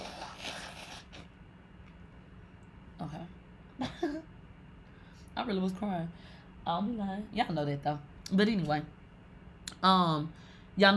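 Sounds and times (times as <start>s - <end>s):
person blowing nose: 0.0s - 1.3s
speech: 5.4s - 9.0s, 9.8s - 10.9s.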